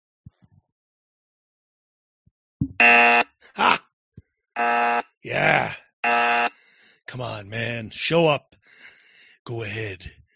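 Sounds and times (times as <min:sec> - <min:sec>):
speech: 0:02.6 - 0:03.8, 0:07.2 - 0:08.5, 0:09.5 - 0:10.2
loud harsh electronic buzzer: 0:02.8 - 0:03.3, 0:04.6 - 0:05.1, 0:06.0 - 0:06.6.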